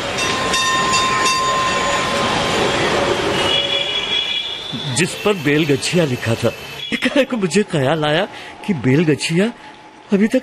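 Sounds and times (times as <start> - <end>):
tram rolling along its rails with steady loud rumble: 0.0 - 8.0
speech: 5.0 - 10.4.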